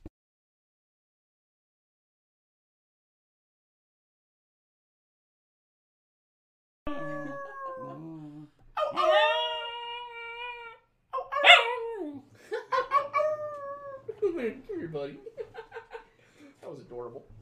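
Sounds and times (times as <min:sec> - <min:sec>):
dog howling while being picked up: 0:06.9 - 0:12.2, 0:12.8 - 0:14.1
dog yips and whimpery cries: 0:08.8 - 0:12.2, 0:12.8 - 0:14.1
laughter: 0:12.3 - 0:13.2, 0:14.0 - 0:16.5
speech: 0:14.4 - 0:15.6, 0:16.7 - 0:17.4.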